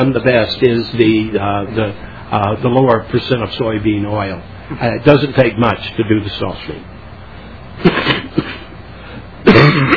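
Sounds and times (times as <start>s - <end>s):
speech: 0.0s - 7.0s, 9.7s - 9.9s
person coughing harshly: 7.8s - 8.7s, 9.4s - 9.9s.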